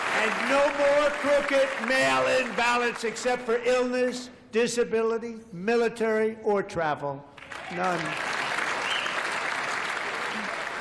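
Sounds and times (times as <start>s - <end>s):
crowd cheering: 0.0s - 3.2s, 7.4s - 10.8s
applause from a political audience of Republicans: 0.0s - 3.4s, 7.4s - 10.8s
speech: 0.2s - 8.3s.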